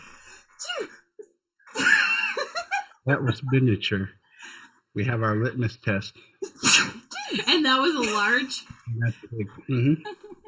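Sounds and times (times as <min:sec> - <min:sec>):
laughter: 0:01.7 - 0:04.1, 0:08.9 - 0:10.4
speech: 0:03.1 - 0:04.2, 0:05.0 - 0:10.2
single loud voiced sneeze with breathy aftersounds: 0:06.6 - 0:07.2.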